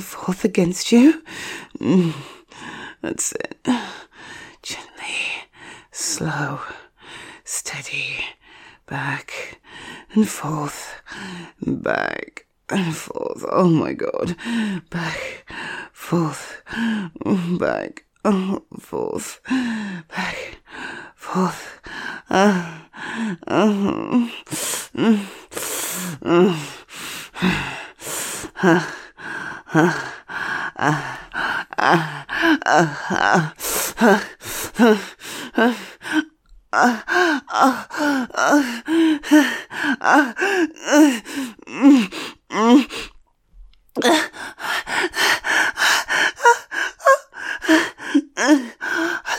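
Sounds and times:
speech: 0.0s - 4.1s, 6.0s - 6.8s, 7.5s - 27.8s, 28.6s - 29.0s, 29.7s - 30.1s, 30.8s - 31.2s, 31.8s - 43.1s, 44.0s - 49.3s
heavy gasping breaths: 1.2s - 3.0s, 3.7s - 4.6s, 9.4s - 10.1s, 14.3s - 17.2s, 19.4s - 43.2s, 44.0s - 49.3s.

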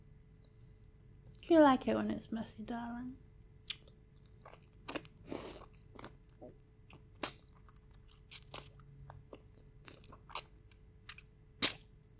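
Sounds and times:
speech: 1.5s - 3.3s
biting and chewing a juicy nectarine: 3.7s - 11.9s.

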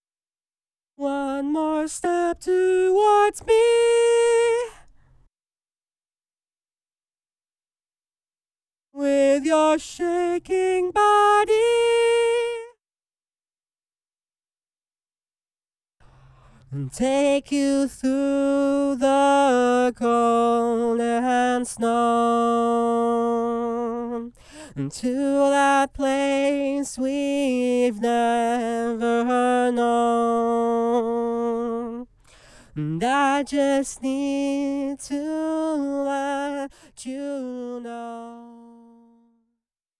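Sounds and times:
dry high harmony vocal stem: 1.0s - 5.0s, 9.0s - 12.8s, 16.0s - 39.4s.

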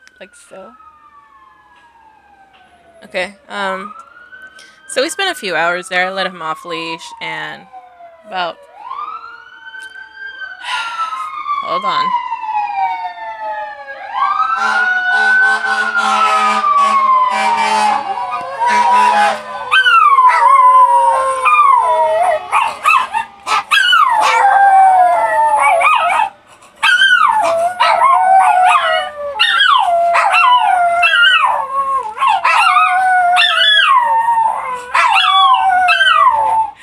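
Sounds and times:
passing fire truck siren: 0.0s - 36.8s
speech: 0.2s - 0.9s, 3.0s - 8.7s, 11.6s - 12.2s, 14.6s - 15.0s
dog howling and yipping: 17.2s - 36.8s.

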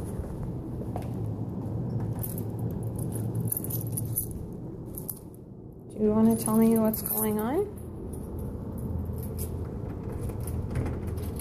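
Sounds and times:
low rumble: 0.0s - 11.4s
keys jangling as they are grabbed: 2.1s - 5.4s, 6.2s - 11.4s
speech: 6.0s - 7.8s.

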